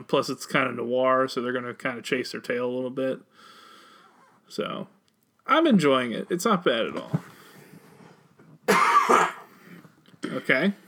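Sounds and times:
speech: 0.0 - 3.6, 4.5 - 7.3, 10.5 - 10.8
quiet breathing: 3.3 - 4.4, 7.2 - 8.4
person coughing: 8.7 - 9.6, 10.2 - 10.6.

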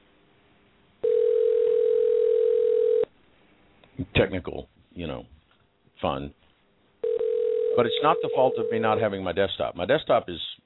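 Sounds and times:
ringback tone from an outgoing phone call: 1.0 - 3.1, 7.0 - 8.9
speech: 4.2 - 5.4, 6.0 - 6.4, 7.8 - 10.6.

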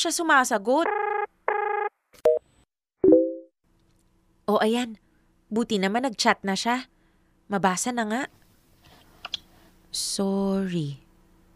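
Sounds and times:
speech: 0.0 - 1.0, 4.5 - 6.9, 7.5 - 8.4, 10.0 - 11.0
electronic phone ringing: 0.9 - 1.9.

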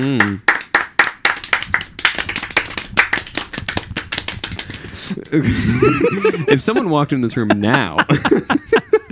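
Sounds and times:
speech: 0.0 - 0.5, 5.3 - 8.6
small group clapping hands in applause: 0.0 - 5.4
laughter: 5.0 - 9.0.

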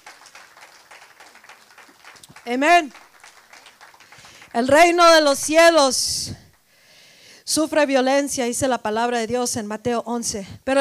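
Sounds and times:
crowd applauding: 0.0 - 5.7
speech: 2.4 - 3.0, 4.6 - 6.4, 7.6 - 10.8.

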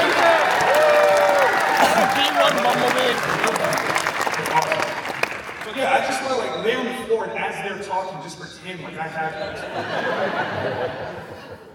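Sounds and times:
audience at a live moderated event cheering with shouts and whoops: 0.0 - 4.1
audience at a live moderated event applauding: 0.0 - 6.6
laughter: 1.7 - 3.9, 8.8 - 11.7
speech: 2.6 - 3.5, 5.8 - 11.2.

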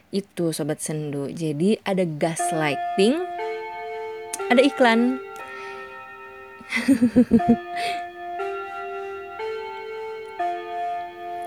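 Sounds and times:
speech: 0.1 - 3.6, 4.5 - 5.3, 6.7 - 8.0
clock sounding clear ringing tones: 2.3 - 11.4
laughter: 6.7 - 7.6.

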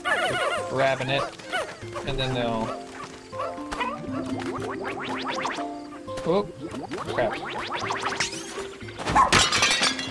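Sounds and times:
speech: 0.3 - 2.9, 4.1 - 8.4, 9.1 - 9.6
clay pots shattering in a video game: 9.0 - 10.0.

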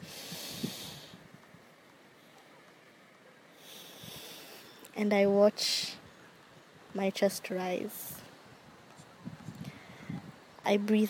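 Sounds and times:
hard breath drawn in: 0.0 - 1.2, 3.6 - 4.8, 9.6 - 10.2
speech: 5.0 - 6.0, 7.0 - 8.2, 10.6 - 11.0.

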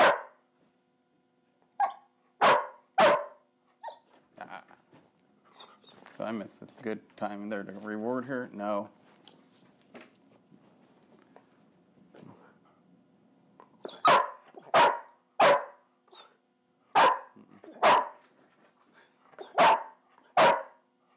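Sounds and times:
dog barking: 0.0 - 0.4, 1.8 - 4.0, 13.9 - 16.3, 16.9 - 18.2, 19.4 - 21.1
quiet shuffling: 4.1 - 12.6
speech: 6.2 - 9.0.

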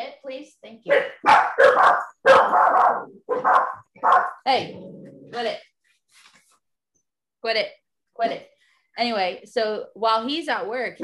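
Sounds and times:
several dogs barking: 0.9 - 4.4
speech: 9.0 - 11.0.

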